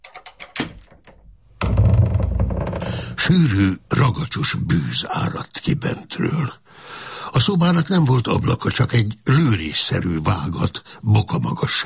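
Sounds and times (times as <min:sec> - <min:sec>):
metallic lock clicking and rattling: 0:00.0 - 0:03.2
heavy iron-bound oak door groaning open: 0:01.6 - 0:03.4
speech: 0:03.3 - 0:11.8.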